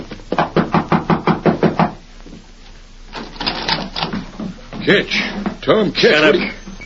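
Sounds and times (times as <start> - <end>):
pounding knocks on the wooden rear door of a cafe: 0.3 - 2.0
speech: 4.8 - 6.6.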